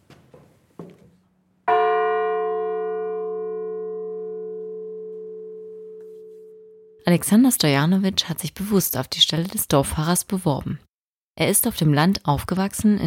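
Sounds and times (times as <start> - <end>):
single loud church bell stroke: 1.7 - 7.0
speech: 7.1 - 13.0.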